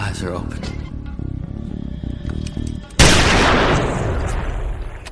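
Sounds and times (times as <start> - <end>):
speech: 0.1 - 0.8
gunshot from a man shooting himself in the mouth: 3.0 - 5.0.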